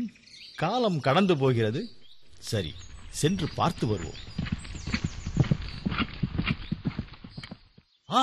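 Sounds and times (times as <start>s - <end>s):
speech: 0.1s - 4.4s
sacrificial horse hooves clip-clopping: 2.8s - 7.9s.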